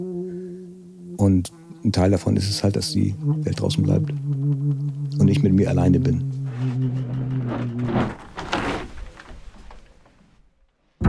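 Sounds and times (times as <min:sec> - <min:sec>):
speech: 0:01.2 - 0:06.7
thick heavy glass door swinging shut with a grinding scrape: 0:07.8 - 0:09.8.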